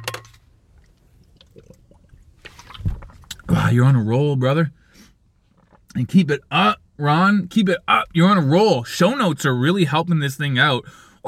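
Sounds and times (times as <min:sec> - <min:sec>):
brief slosh of water: 0:00.7 - 0:03.4
person gulping water: 0:00.8 - 0:03.6
louder splash or thump: 0:02.5 - 0:03.2
speech: 0:03.7 - 0:04.8, 0:06.0 - 0:11.2.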